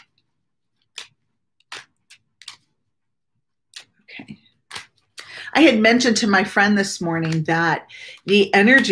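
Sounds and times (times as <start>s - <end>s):
deck of tarot cards being shuffled: 0.0s - 2.8s, 3.8s - 5.2s, 7.2s - 7.6s
speech: 4.2s - 4.4s, 5.5s - 8.9s.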